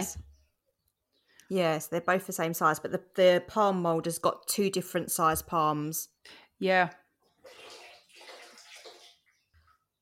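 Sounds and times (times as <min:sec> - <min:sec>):
speech: 0:00.0 - 0:00.3, 0:01.5 - 0:07.6
water gushing from a tap: 0:07.3 - 0:09.7.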